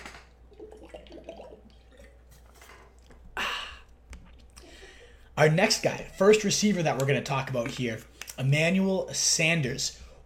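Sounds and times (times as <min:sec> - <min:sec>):
person sipping water: 0:00.6 - 0:05.4
speech: 0:05.4 - 0:10.2.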